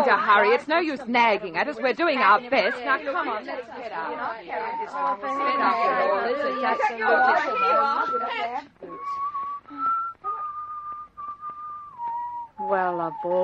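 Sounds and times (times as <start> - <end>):
speech: 0.0 - 9.2, 12.6 - 13.4
several voices talking over each other: 0.0 - 10.2
person whistling a tune: 7.2 - 13.4.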